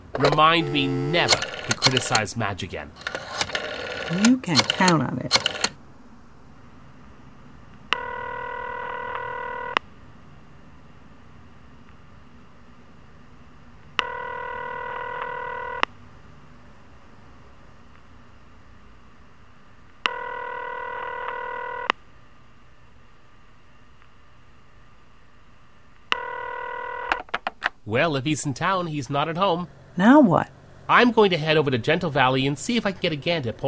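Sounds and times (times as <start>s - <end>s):
electronic telephone ringing: 0.0s - 2.3s, 3.0s - 5.8s, 7.9s - 9.8s, 14.0s - 15.9s, 20.0s - 21.9s, 26.1s - 27.3s
speech: 0.2s - 3.1s, 4.1s - 5.4s, 27.9s - 33.6s.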